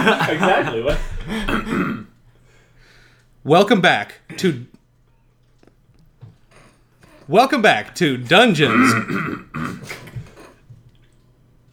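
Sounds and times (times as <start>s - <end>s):
speech: 0.0s - 1.5s, 3.4s - 4.7s, 7.3s - 10.1s
laughter: 0.0s - 2.1s
faint low room hum: 0.0s - 11.7s
rough guttural throat clearing: 0.8s - 2.2s, 8.7s - 10.8s.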